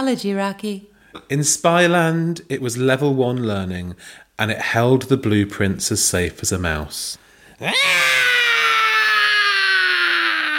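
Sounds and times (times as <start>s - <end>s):
speech: 0.0s - 8.3s
loud piercing scream: 7.6s - 10.5s.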